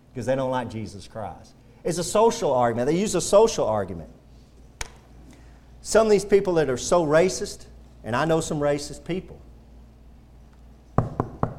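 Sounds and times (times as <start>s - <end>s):
speech: 0.2s - 4.2s, 5.8s - 9.5s
knocking on a wooden door: 11.0s - 11.5s.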